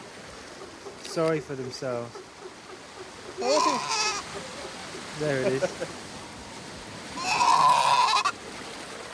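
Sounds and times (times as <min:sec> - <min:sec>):
speech: 0:01.2 - 0:02.2, 0:03.4 - 0:04.5, 0:05.2 - 0:06.0
Juan Fernandez fur seal pup giving wavering sheep-like bleating lost calls: 0:03.4 - 0:04.2, 0:07.2 - 0:08.3.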